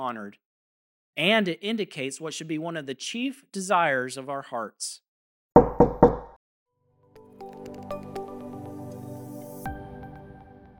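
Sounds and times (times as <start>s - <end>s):
speech: 0.0s - 0.5s, 1.2s - 5.0s
firm knocks on a door: 5.6s - 6.4s.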